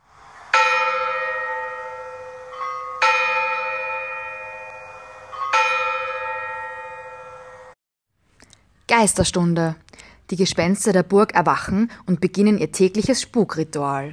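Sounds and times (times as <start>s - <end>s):
large tower clock bell striking the hour: 0.5s - 7.8s
speech: 9.0s - 14.1s.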